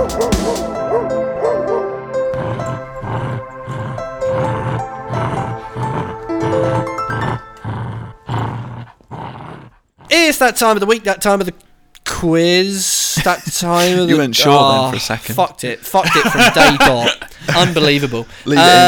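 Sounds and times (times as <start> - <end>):
dog barking: 0.0 - 1.9
sustained musical backing: 0.0 - 8.0
speech: 10.4 - 18.8
laughter: 13.2 - 18.8.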